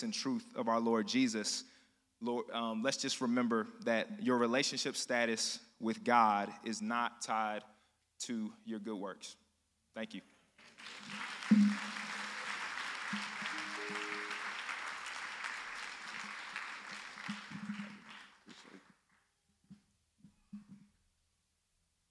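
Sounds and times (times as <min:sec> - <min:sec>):
speech: 0:00.0 - 0:09.4, 0:10.0 - 0:11.9
church audience applauding: 0:10.6 - 0:19.2.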